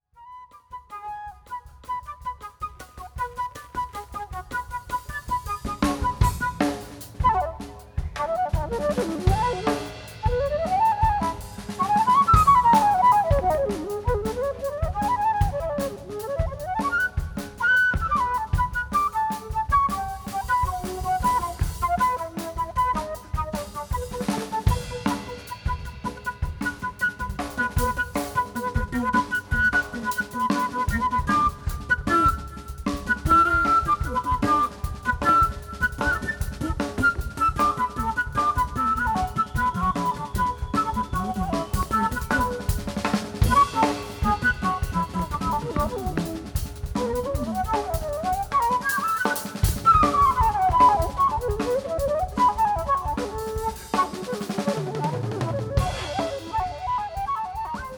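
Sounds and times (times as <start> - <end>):
drums: 0.0 - 57.9
flute: 0.0 - 57.9.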